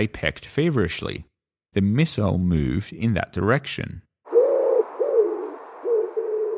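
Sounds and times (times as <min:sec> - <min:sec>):
speech: 0:00.0 - 0:04.1
pigeon cooing: 0:04.3 - 0:06.5.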